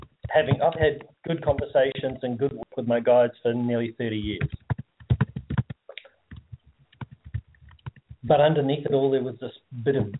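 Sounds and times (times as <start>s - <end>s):
speech: 0.4s - 4.6s, 8.3s - 10.1s
typing on a computer keyboard: 4.4s - 8.2s.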